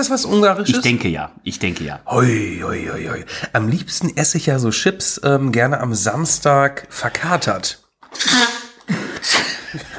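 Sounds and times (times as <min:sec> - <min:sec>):
speech: 0:00.0 - 0:08.5
loud sneeze: 0:08.1 - 0:09.6.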